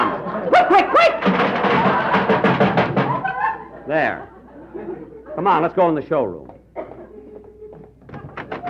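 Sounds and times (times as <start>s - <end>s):
laughter: 0.0s - 5.6s
metallic clattering and banging of a car door being fitted onto a car: 1.1s - 3.5s
speech: 3.9s - 6.5s.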